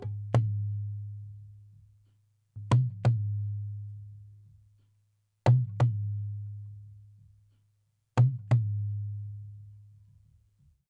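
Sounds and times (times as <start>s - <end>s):
dholak drum beat at 88 bpm: 0.0s - 1.1s, 2.6s - 3.8s, 5.5s - 6.3s, 8.2s - 9.1s.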